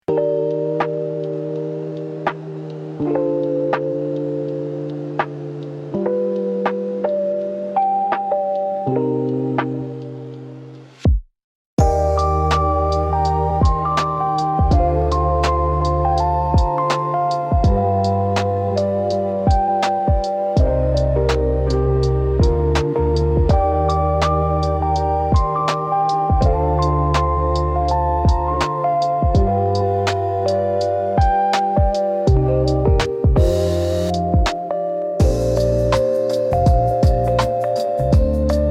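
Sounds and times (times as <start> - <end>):
chill lofi study music: 0.0 - 11.0, 11.8 - 38.6.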